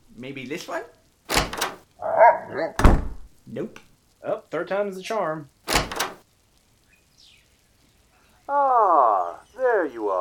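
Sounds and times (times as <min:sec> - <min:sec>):
speech: 0:00.2 - 0:01.0, 0:02.4 - 0:05.6, 0:08.5 - 0:10.2
door being tried and thudding: 0:01.3 - 0:01.8, 0:02.7 - 0:03.3, 0:05.7 - 0:06.2.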